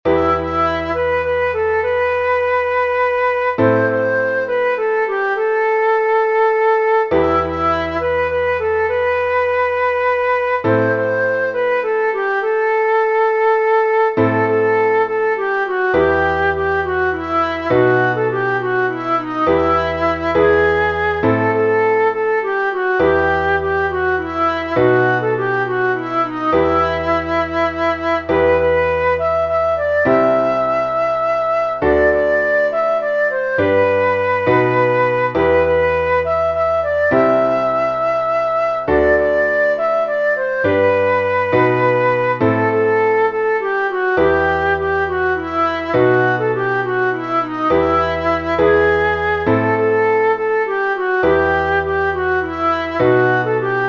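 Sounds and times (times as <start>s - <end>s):
folk music: 0.1s - 53.8s.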